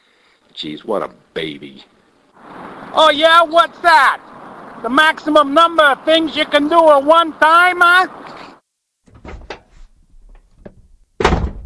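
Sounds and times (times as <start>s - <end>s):
speech: 0.5s - 8.4s
quiet thumps: 9.0s - 11.6s
door slamming shut: 9.1s - 9.7s, 11.2s - 11.6s.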